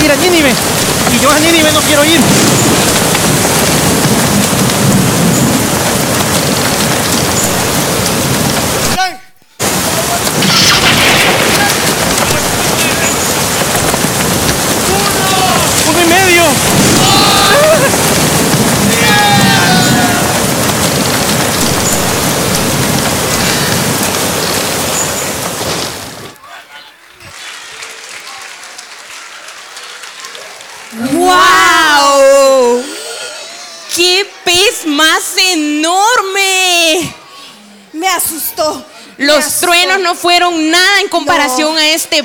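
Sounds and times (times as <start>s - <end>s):
crashing waves in a storm at sea: 0.0s - 26.4s
heavy rain in a storm at sea: 0.0s - 42.2s
speech: 0.4s - 3.0s, 40.1s - 42.2s.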